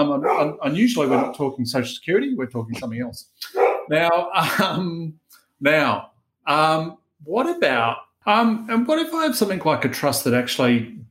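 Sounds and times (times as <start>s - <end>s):
speech: 0.0s - 11.0s
dog barking: 0.2s - 1.5s, 3.4s - 4.0s.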